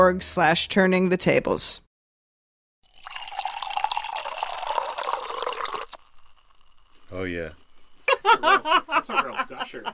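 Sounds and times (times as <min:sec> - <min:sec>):
speech: 0:00.0 - 0:01.9, 0:07.2 - 0:07.6, 0:08.2 - 0:09.9
drink pouring into a glass: 0:02.8 - 0:08.1
laughter: 0:08.1 - 0:09.9.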